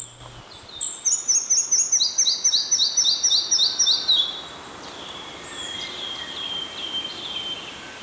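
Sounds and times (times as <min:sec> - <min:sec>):
red-breasted flycatcher singing: 0:00.0 - 0:08.0.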